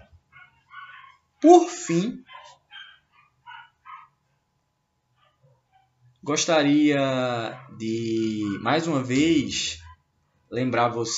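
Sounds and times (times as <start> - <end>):
neighbor's dog barking: 0.3 - 4.5, 5.2 - 6.1, 7.4 - 10.1
speech: 1.4 - 2.6, 6.2 - 9.8, 10.5 - 11.1.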